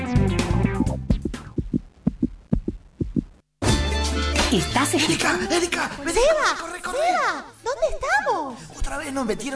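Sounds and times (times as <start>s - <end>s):
heartbeat sound effect of low paired thumps: 0.2s - 3.4s
speech: 4.5s - 9.5s.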